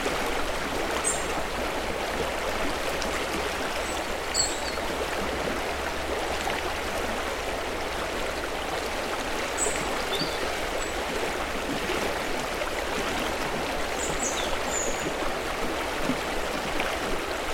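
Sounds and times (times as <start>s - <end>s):
clear river water bubbling through small rapids on the River Usk: 0.0s - 17.5s.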